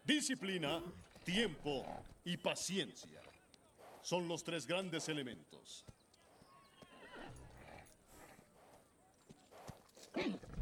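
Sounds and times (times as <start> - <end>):
speech: 0.1 - 3.4, 4.0 - 6.0
horse hooves clip-clopping: 0.4 - 4.1, 5.1 - 10.6
short whinny-like call of a horse: 6.6 - 7.9.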